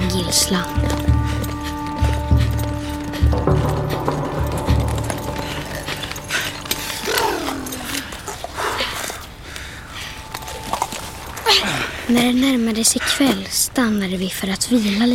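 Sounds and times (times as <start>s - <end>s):
horses' hooves clip-clopping while riding: 0.0s - 9.3s, 10.0s - 11.5s
busy outdoor noise: 0.0s - 15.1s
speech: 0.2s - 1.1s, 12.1s - 15.1s
snort-like sweep: 0.7s - 9.0s.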